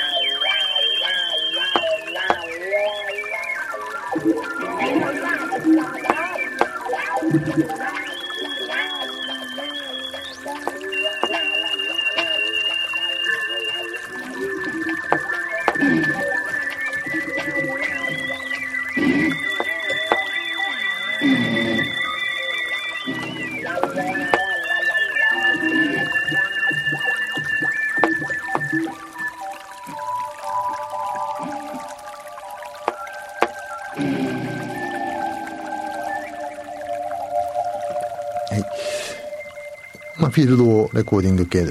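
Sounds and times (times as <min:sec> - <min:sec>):
river water flowing: 0:00.0 - 0:41.6
speech: 0:07.3 - 0:08.1, 0:40.5 - 0:41.6
knocks of a wooden fish mokugyo: 0:10.6 - 0:11.5, 0:19.6 - 0:20.3.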